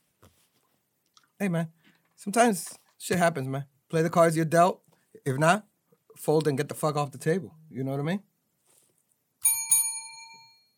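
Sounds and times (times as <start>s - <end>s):
speech: 1.4s - 8.3s
bicycle bell ringing: 9.4s - 10.7s.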